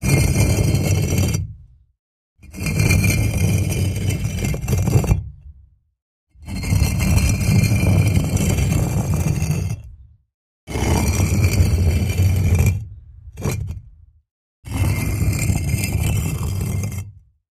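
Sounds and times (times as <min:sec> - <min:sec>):
heavy stone brick being pushed: 0:00.0 - 0:01.5, 0:02.5 - 0:05.3, 0:06.4 - 0:09.9, 0:10.7 - 0:13.9, 0:14.7 - 0:17.1.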